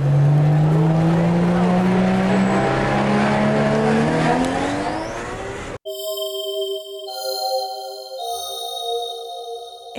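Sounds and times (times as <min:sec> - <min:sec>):
convertible sports car engine revving and accelerating: 0:00.0 - 0:05.8
steady sustained tonal sound: 0:05.9 - 0:09.9.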